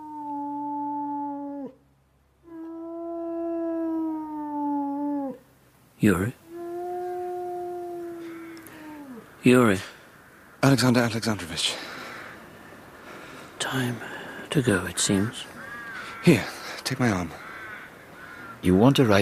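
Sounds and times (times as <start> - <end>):
person howling like a wolf cub at a funeral: 0.0 - 1.8, 2.5 - 5.4, 6.5 - 9.2
speech: 6.0 - 6.4, 9.4 - 10.0, 10.6 - 12.0, 13.7 - 15.6, 16.2 - 17.4, 18.6 - 19.2.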